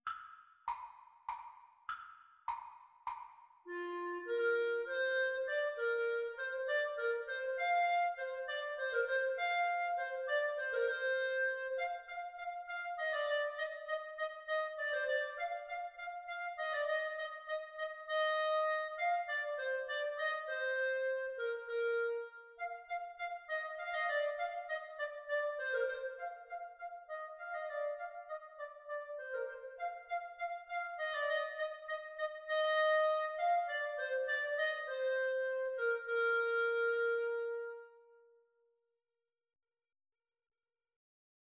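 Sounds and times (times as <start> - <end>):
tenor saxophone: 3.7 - 15.4, 16.5 - 22.6, 32.4 - 38.3
clarinet: 3.7 - 38.5.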